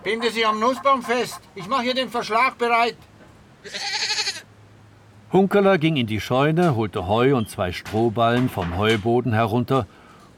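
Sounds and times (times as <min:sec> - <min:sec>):
goat bleating: 0:00.0 - 0:02.1, 0:03.6 - 0:04.5
faint low hum: 0:00.0 - 0:03.0
speech: 0:00.1 - 0:04.0, 0:05.3 - 0:10.0.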